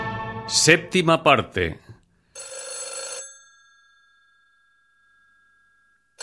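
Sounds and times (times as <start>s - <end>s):
speech: 0.7s - 1.9s
old-fashioned telephone bell ringing: 2.3s - 6.2s.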